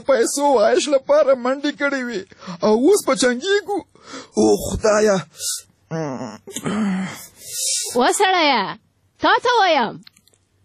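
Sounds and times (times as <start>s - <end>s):
speech: 0.0s - 10.2s
person moaning and whimpering in their sleep during a bad dream: 5.9s - 7.4s.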